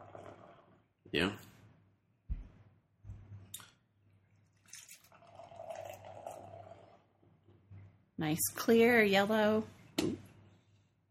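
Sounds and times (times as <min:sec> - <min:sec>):
speech: 0:01.1 - 0:01.5, 0:08.2 - 0:10.2
pilsner beer pouring from a can into a glass: 0:04.4 - 0:07.2.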